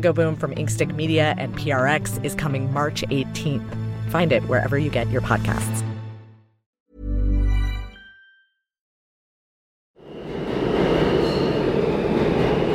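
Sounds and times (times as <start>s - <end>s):
speech: 0.0s - 5.9s
New York City subway train rumbling and rattling as it runs: 10.0s - 12.7s.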